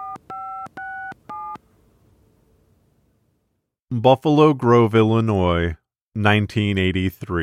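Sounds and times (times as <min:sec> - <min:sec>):
phone booth telephone number being dialed with touch-tone beeps: 0:00.0 - 0:01.6
faint hiss: 0:00.2 - 0:03.7
speech: 0:03.9 - 0:07.4.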